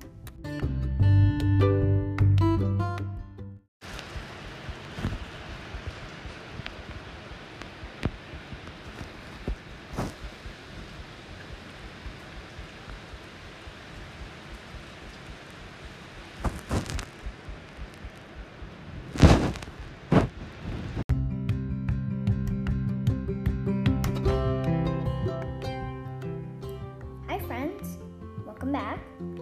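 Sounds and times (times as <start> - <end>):
music: 0.0 - 3.7, 21.1 - 29.4
steady rain pattering on a roof: 3.8 - 21.1.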